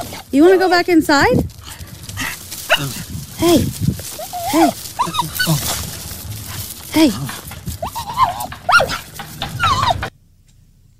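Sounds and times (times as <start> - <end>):
recorded dog yelping barks and whines played back: 0.0 - 0.7, 2.2 - 3.1, 4.1 - 5.8, 7.8 - 10.1
faint hum: 0.0 - 10.9
speech: 0.3 - 1.6, 2.8 - 3.9, 4.5 - 5.8, 7.0 - 7.4.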